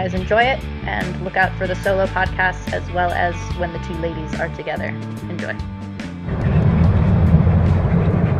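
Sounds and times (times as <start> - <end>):
speech: 0.1 - 6.5
car driving on a road between cities: 6.0 - 8.3.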